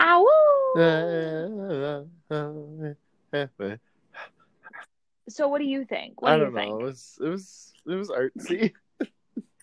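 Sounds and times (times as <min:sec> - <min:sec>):
person imitating wolf yelps and calls: 0:00.0 - 0:01.9
person imitating a wolf howl: 0:00.0 - 0:03.0
speech: 0:00.8 - 0:03.9, 0:05.3 - 0:09.5.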